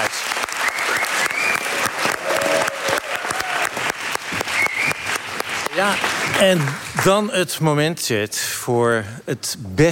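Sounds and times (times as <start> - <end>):
audience applause at a poetry competition awards event: 0.0 - 7.1
speech: 5.8 - 9.9.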